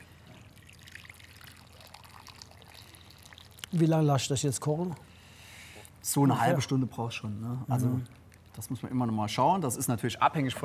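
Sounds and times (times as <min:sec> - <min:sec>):
hot water pouring into a cooking pot with spices and vinegar: 0:00.5 - 0:04.2
speech: 0:03.7 - 0:05.1, 0:06.1 - 0:10.6.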